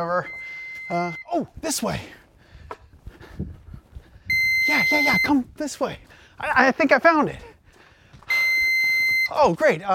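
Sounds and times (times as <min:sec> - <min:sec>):
speech: 0:00.0 - 0:02.8, 0:04.7 - 0:07.5, 0:09.3 - 0:09.9
thin high piercing electronic beep: 0:00.2 - 0:01.3, 0:04.3 - 0:05.4, 0:08.3 - 0:09.4.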